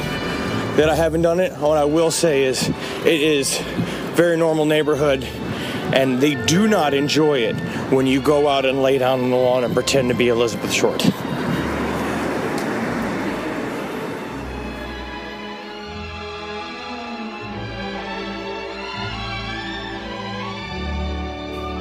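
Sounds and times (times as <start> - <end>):
car driving through city streets in Los Angeles: 0.0 - 4.2, 10.8 - 20.6
road and engine rumble from a car driving through city streets: 0.0 - 21.7
speech: 0.8 - 11.2.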